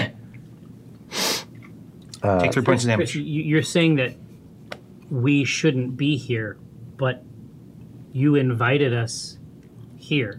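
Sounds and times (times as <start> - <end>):
person sneezing caused by dust: 1.1 - 1.5
speech: 2.2 - 4.2, 5.1 - 7.3, 8.2 - 9.4, 10.0 - 10.3.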